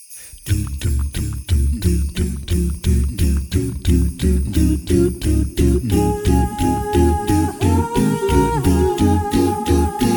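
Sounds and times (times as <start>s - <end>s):
bright jingling: 0.0s - 10.1s
vocal group singing an old festive winter song: 4.6s - 10.1s.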